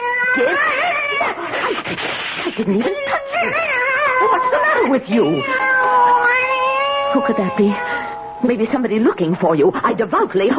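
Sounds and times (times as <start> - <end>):
big cat yowling in protest: 0.0 - 1.9, 2.8 - 8.4
speech: 0.4 - 5.7, 7.1 - 10.5.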